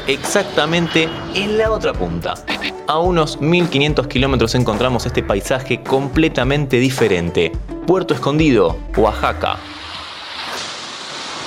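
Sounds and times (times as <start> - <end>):
speech: 0.0 - 9.8
strong Pacific ocean surf crashing on Playa Zicatela in Puerto Escondido Mexico: 9.5 - 11.4.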